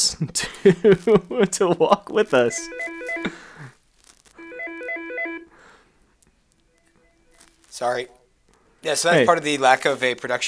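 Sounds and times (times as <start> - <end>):
laughter: 0.0 - 3.7
speech: 0.1 - 3.5, 7.8 - 8.2, 8.8 - 10.4
office phone ringing with electronic melodic trill: 2.4 - 3.4, 4.4 - 5.6.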